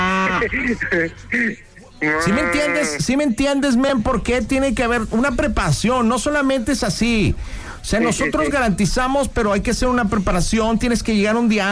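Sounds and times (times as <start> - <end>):
speech: 0.4 - 11.7
person imitating cow mooing: 2.0 - 3.0.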